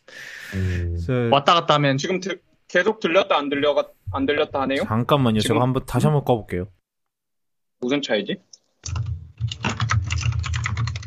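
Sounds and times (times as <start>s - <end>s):
speech: 0.5s - 6.8s, 7.8s - 9.0s
computer keyboard typing: 8.6s - 11.0s.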